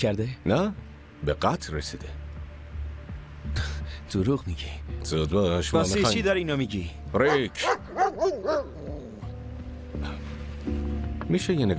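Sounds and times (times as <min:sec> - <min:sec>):
speech: 0:00.0 - 0:02.2, 0:03.6 - 0:08.9, 0:11.3 - 0:11.7
police detection dog barking: 0:07.3 - 0:08.9.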